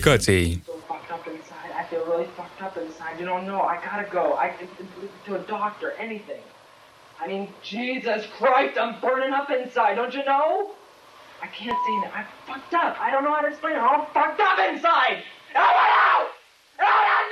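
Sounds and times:
speech: 0:00.0 - 0:00.7, 0:02.2 - 0:06.6, 0:07.2 - 0:10.8, 0:11.4 - 0:17.3
young male student screaming and wailing while feigning a nervous breakdown: 0:15.6 - 0:17.3.

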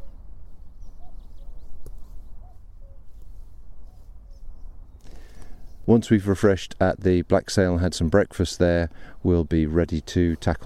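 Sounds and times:
steady outdoor wind noise: 0:00.0 - 0:10.6
cuckoo calling: 0:00.8 - 0:02.1
speech: 0:05.9 - 0:10.6.

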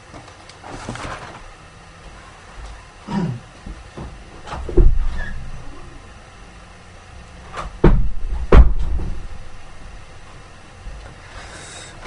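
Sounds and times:
door opening and closing to let cat out: 0:04.4 - 0:05.9, 0:07.5 - 0:09.8.

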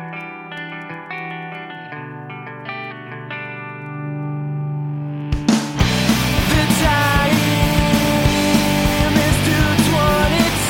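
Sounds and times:
heavily distorted rock guitar: 0:00.0 - 0:10.6
melodic bass: 0:05.2 - 0:10.6
loud driving drums: 0:05.3 - 0:10.6.

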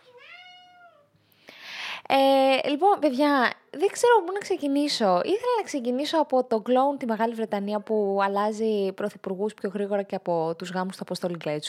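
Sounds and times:
cat meowing: 0:00.0 - 0:01.1
speech: 0:02.1 - 0:11.6.

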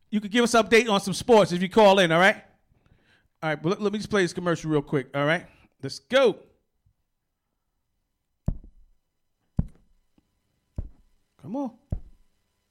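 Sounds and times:
speech: 0:00.1 - 0:02.5, 0:03.4 - 0:06.5, 0:11.4 - 0:11.8
loud thumping knocks on hard equipment: 0:08.5 - 0:08.9, 0:11.9 - 0:12.2.

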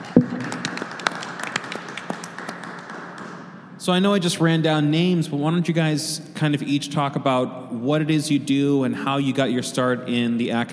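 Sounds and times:
small audience clapping: 0:00.0 - 0:03.5
speech: 0:03.9 - 0:10.7.

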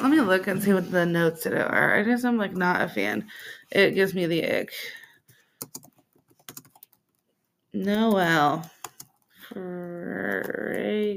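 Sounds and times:
speech: 0:00.0 - 0:05.0, 0:07.7 - 0:08.8, 0:09.5 - 0:11.1
typing on a computer keyboard: 0:05.0 - 0:09.4, 0:10.0 - 0:11.1.

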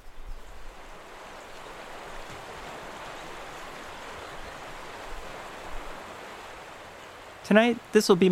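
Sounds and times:
rushing glacial-fed creek tumbling over rocks: 0:00.0 - 0:08.3
speech: 0:07.5 - 0:08.3.

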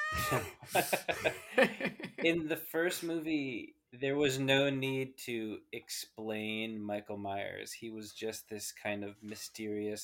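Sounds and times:
cat meowing: 0:00.0 - 0:00.4
speech: 0:00.1 - 0:10.0
laughter: 0:00.2 - 0:02.6.

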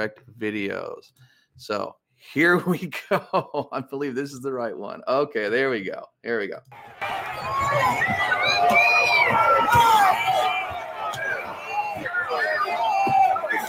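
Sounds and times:
speech: 0:00.0 - 0:10.4
crowd yelling at protesters: 0:06.7 - 0:13.6.

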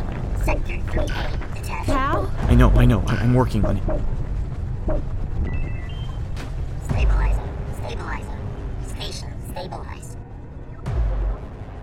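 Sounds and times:
constant low rumble: 0:00.0 - 0:11.8
speech: 0:00.4 - 0:04.2, 0:04.8 - 0:05.8
spaceship emergency alarm beeping and warbling in electronic tones: 0:05.4 - 0:06.4.

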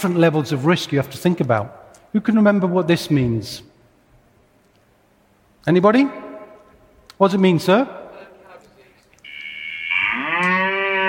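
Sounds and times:
speech: 0:00.0 - 0:03.7, 0:05.6 - 0:06.2, 0:07.2 - 0:08.0
cow mooing: 0:09.9 - 0:11.0.

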